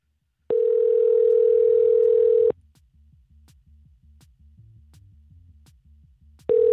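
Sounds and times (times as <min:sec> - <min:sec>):
telephone line tone after dialing a number: 0:00.5 - 0:02.5, 0:06.5 - 0:06.7.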